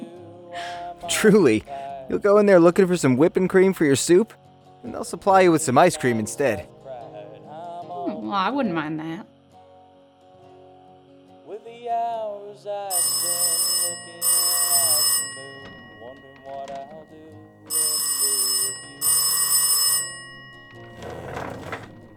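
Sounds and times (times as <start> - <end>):
speech: 1.1 - 6.7, 8.1 - 9.3, 11.7 - 14.0
old-fashioned telephone bell ringing: 12.9 - 22.1.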